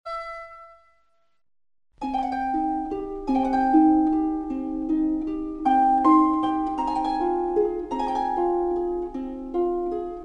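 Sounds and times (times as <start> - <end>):
harp: 2.0 - 10.2.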